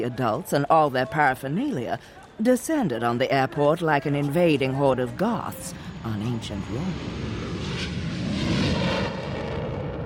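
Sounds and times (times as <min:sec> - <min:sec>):
speech: 0:00.0 - 0:07.4
passenger plane engine drone heard aboard a flight from Montreal to Italy: 0:04.2 - 0:10.0.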